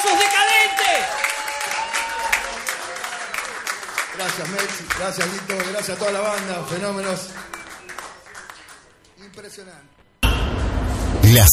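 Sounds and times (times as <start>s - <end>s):
audience applauding a band after a live performance: 0.0s - 9.0s
speech: 4.2s - 7.6s, 9.4s - 10.0s, 11.2s - 11.5s.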